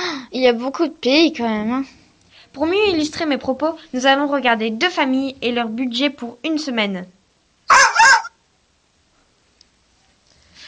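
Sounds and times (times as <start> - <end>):
speech: 0.3 - 2.0, 2.6 - 7.8
dog barking in the room: 7.7 - 8.4.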